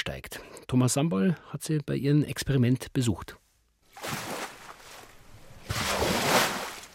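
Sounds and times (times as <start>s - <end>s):
speech: 0.1s - 3.4s
artificial waves crashing against a test dune in a workshop hall: 5.6s - 6.9s.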